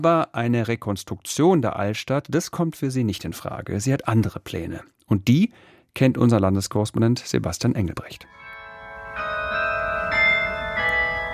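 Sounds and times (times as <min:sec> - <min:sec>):
speech: 0:00.0 - 0:08.4
church carillon ringing bright sustained bell tones: 0:08.3 - 0:11.3.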